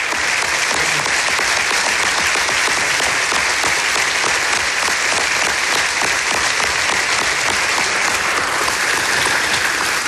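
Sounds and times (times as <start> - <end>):
large audience applause after a lecture: 0.0 - 10.0.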